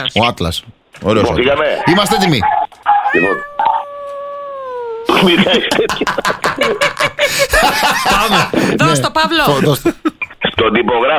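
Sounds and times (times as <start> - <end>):
speech: 0.0 - 3.5, 5.1 - 11.1
dog giving a drawn-out wavering howl: 2.8 - 5.0
laughter: 5.0 - 8.8, 9.7 - 11.1.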